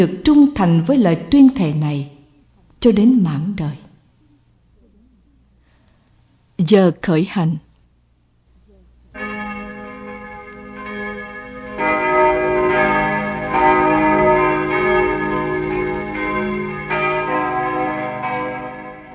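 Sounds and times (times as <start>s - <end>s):
speech: 0.0s - 2.2s, 2.8s - 3.8s, 6.6s - 7.6s
seminary church bells ringing loudly: 9.2s - 19.1s.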